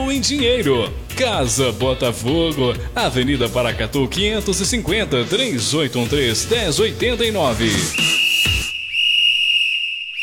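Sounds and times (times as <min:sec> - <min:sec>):
speech: 0:00.1 - 0:08.1
referee's whistle: 0:07.6 - 0:10.2.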